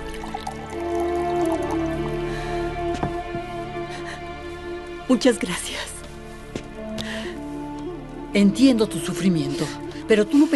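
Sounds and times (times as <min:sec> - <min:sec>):
water poured into a drinking glass: 0:00.0 - 0:02.4
water drips: 0:00.0 - 0:03.7
steady tonal background: 0:00.0 - 0:10.5
speech: 0:05.1 - 0:05.9, 0:08.4 - 0:10.5.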